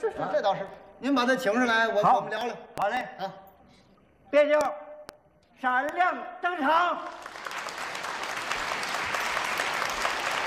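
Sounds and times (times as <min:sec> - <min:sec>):
speech: 0:00.0 - 0:03.4, 0:04.3 - 0:04.8, 0:05.6 - 0:07.3
audience applause from a live comedy stage crowd: 0:07.0 - 0:10.4.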